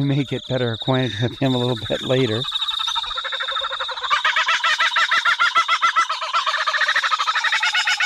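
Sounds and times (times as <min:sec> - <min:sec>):
speech: 0:00.0 - 0:02.7
kookaburra laughing call: 0:00.3 - 0:08.0.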